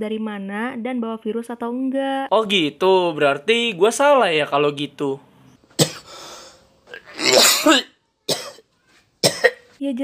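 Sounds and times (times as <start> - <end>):
speech: 0.0 - 5.3, 7.6 - 7.9, 9.8 - 10.0
person coughing harshly: 5.8 - 6.2, 7.0 - 8.6, 9.2 - 9.7.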